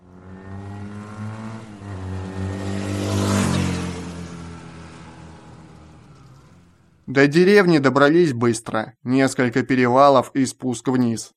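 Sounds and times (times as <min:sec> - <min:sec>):
several motorcycle engines droning while riding past sunny alpine meadows: 0:00.0 - 0:07.7
speech: 0:07.1 - 0:11.3.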